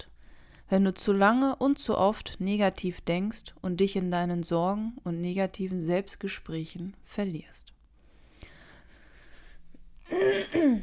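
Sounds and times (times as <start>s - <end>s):
speech: 0.7s - 7.8s, 10.1s - 10.8s
person coughing raspily: 10.0s - 10.8s.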